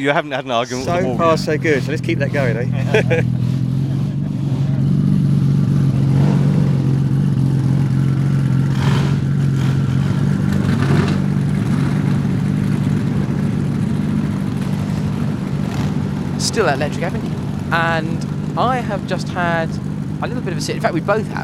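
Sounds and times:
speech: 0.0 - 3.4, 16.6 - 21.4
laughter: 0.0 - 3.5
big car engine and road noise along a narrow lane: 0.0 - 21.4.

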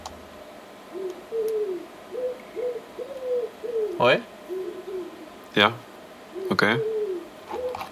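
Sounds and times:
faint steady hiss: 0.0 - 7.9
pigeon cooing: 0.9 - 5.4, 6.3 - 7.9
speech: 4.0 - 4.3, 5.5 - 5.9, 6.5 - 6.9.

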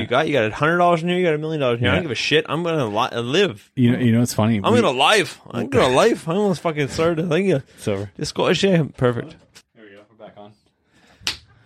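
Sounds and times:
speech: 0.0 - 9.5
sharp slap: 11.2 - 11.5.

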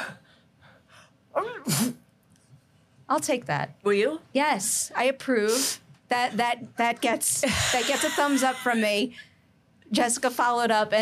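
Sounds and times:
person performing a staged fake sneeze: 1.3 - 2.0
speech: 3.1 - 9.3, 9.9 - 11.0.

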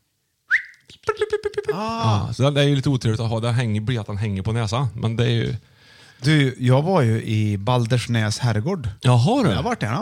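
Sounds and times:
person whistling to trigger a keyring finder: 0.5 - 1.3
speech: 1.0 - 10.0.

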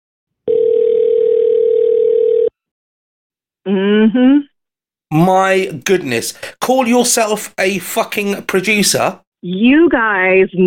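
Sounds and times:
telephone ringback tone during outgoing call: 0.5 - 2.5
speech: 3.7 - 4.4, 5.1 - 10.6.

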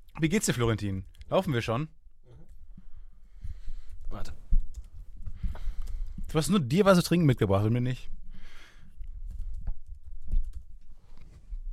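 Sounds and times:
speech: 0.2 - 2.0, 6.3 - 8.2
rapid typing of an email on a computer keyboard: 9.3 - 10.8.

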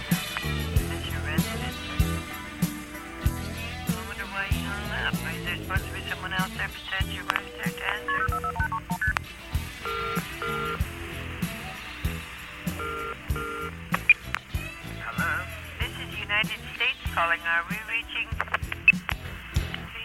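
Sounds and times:
busy music: 0.0 - 20.0
people talking: 0.4 - 1.8, 3.6 - 9.1, 15.0 - 18.8, 19.6 - 20.0
phone keypad dialing tones: 7.2 - 9.2, 9.8 - 10.8, 12.8 - 13.7.

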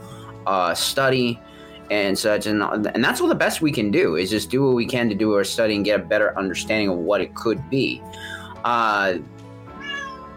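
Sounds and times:
speech: 0.4 - 9.4
cat meowing: 9.8 - 10.3.

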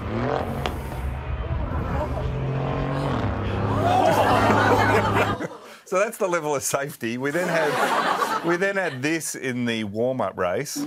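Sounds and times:
Formula One medical car engine droning while driving a lap: 0.0 - 5.5
crowd murmur: 1.5 - 5.6
laughter: 1.7 - 5.8, 7.3 - 9.2
speech: 5.9 - 10.8.

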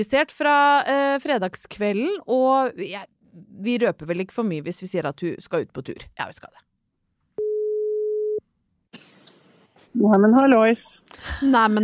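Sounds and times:
speech: 0.0 - 6.7, 10.0 - 11.8
telephone ringback tone while placing a call: 7.4 - 8.4.

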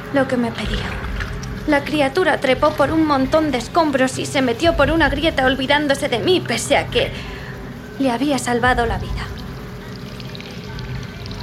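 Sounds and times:
speech: 0.1 - 7.4, 8.0 - 9.4
water gushing from a crack in a brick wall: 0.5 - 5.6, 8.9 - 11.4.

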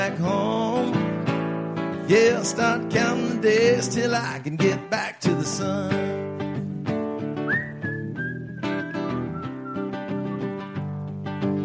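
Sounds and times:
speech: 0.0 - 1.0, 2.1 - 6.4
band accompaniment of guitar and rhythm: 0.0 - 11.6
person whistling a melody in place of guitar solo: 7.4 - 10.6.

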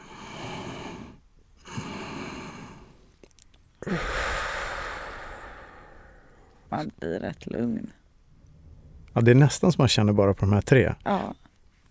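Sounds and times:
slow breathing in through the nose and out again: 0.0 - 3.1, 3.8 - 6.7
speech: 6.7 - 8.0, 9.2 - 11.4.

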